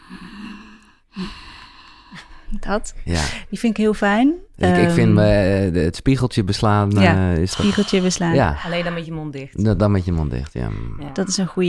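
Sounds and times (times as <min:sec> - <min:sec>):
ujjayi breathing through a constricted throat with the mouth closed: 0:00.0 - 0:02.5, 0:07.4 - 0:09.1, 0:09.8 - 0:11.6
speech: 0:02.6 - 0:11.6.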